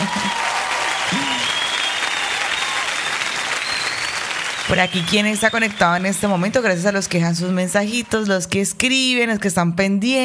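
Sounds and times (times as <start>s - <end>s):
crowd applauding: 0.0s - 6.9s
speech: 4.7s - 10.2s.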